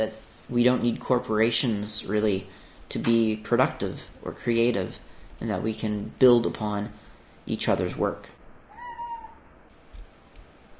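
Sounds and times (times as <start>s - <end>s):
speech: 0.0s - 8.4s
cat meowing: 8.7s - 9.4s.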